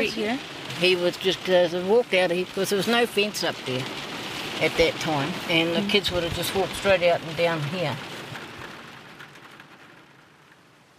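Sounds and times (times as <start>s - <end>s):
speech: 0.0s - 8.1s
steady rain falling: 0.0s - 10.9s.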